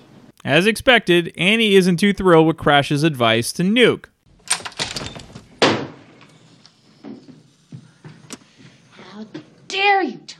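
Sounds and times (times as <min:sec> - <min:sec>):
speech: 0:00.4 - 0:04.1
door rattling and swinging open with a sharp bang: 0:04.4 - 0:06.1
soft uneven footsteps: 0:06.1 - 0:09.7.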